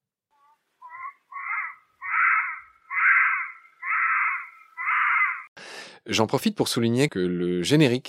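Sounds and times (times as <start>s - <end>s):
galago wailing infant-like cries: 0.4s - 5.5s
speech: 6.1s - 8.0s.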